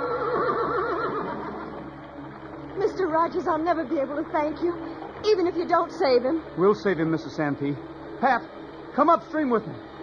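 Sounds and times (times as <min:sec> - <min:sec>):
horse neighing beside river rapids: 0:00.0 - 0:01.9
speech: 0:03.1 - 0:09.9.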